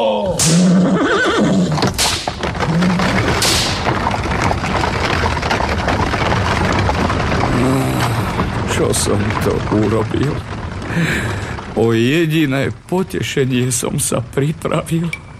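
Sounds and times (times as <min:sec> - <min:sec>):
horses whinnying: 0:00.0 - 0:11.8
horse-drawn carriage getting underway: 0:00.0 - 0:15.3
speech: 0:08.9 - 0:15.2.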